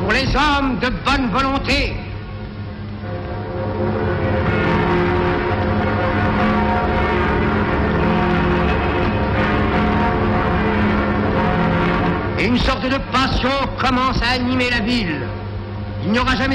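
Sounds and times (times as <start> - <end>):
speech: 0.1 - 2.0, 12.4 - 15.4, 16.0 - 16.5
church bells pealing from many bell towers: 3.0 - 15.6.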